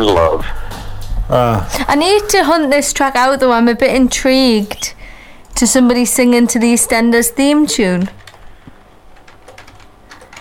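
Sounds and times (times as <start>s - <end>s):
steady low hum: 0.0s - 10.4s
speech: 1.3s - 5.0s, 5.6s - 8.2s
typing on a magic keyboard computer keyboard: 6.7s - 10.4s.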